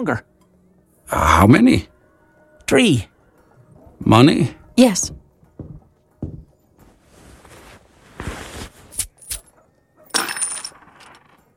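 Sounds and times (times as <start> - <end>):
speech: 0.0 - 0.3, 1.1 - 1.9, 2.7 - 3.1, 4.0 - 6.4
soft knocks: 5.1 - 6.6
gold coins clinking and jingling: 8.9 - 11.5.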